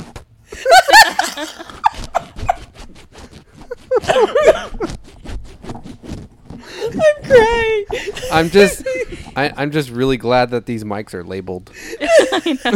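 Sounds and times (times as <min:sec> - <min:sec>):
people laughing loudly: 0:00.6 - 0:02.7, 0:03.7 - 0:04.9, 0:06.7 - 0:09.4, 0:11.8 - 0:12.7
speech: 0:01.4 - 0:02.4, 0:04.2 - 0:05.0, 0:08.3 - 0:08.8, 0:09.4 - 0:12.7
zipper being pulled: 0:01.4 - 0:09.4.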